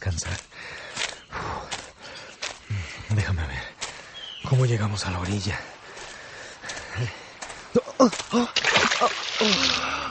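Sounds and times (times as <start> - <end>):
speech: 0.0 - 0.5, 4.6 - 5.7, 7.0 - 7.2, 8.0 - 10.0
rushing river water: 1.8 - 10.0
peasant's axe splashing into a deep flowing river: 8.6 - 9.9.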